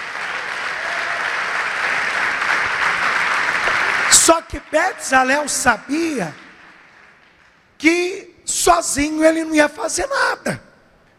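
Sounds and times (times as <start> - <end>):
audience applauding: 0.0 - 7.6
speech: 4.2 - 6.4, 7.8 - 10.7.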